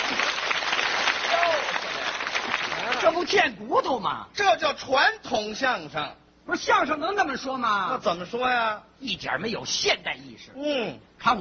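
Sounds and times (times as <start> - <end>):
audience clapping for a traditional crosstalk comedy performance: 0.0 - 3.4
speech: 3.2 - 11.4.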